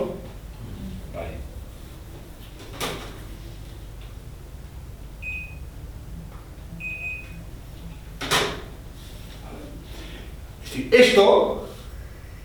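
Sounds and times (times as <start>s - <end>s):
quiet room hum: 0.0s - 12.4s
door shutting: 8.2s - 8.8s
speech: 10.9s - 11.6s.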